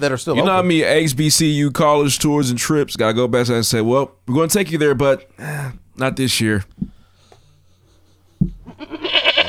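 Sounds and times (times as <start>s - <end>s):
speech: 0.0s - 6.9s
goat bleating: 8.7s - 9.4s.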